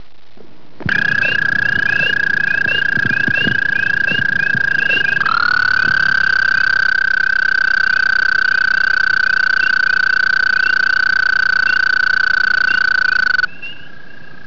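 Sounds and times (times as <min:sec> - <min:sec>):
American toad calling: 0:00.9 - 0:14.4.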